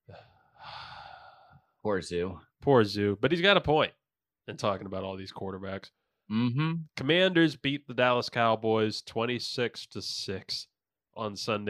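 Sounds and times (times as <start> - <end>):
person gasping for air: 0.0 - 1.6
speech: 1.8 - 11.6.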